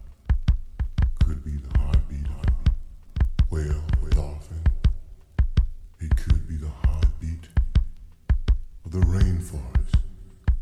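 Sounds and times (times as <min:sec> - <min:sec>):
heartbeat: 0:00.0 - 0:10.6.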